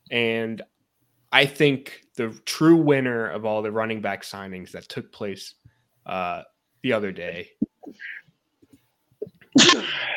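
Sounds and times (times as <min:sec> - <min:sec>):
speech: 0:00.1 - 0:00.7, 0:01.3 - 0:08.1
sneeze: 0:09.6 - 0:10.1.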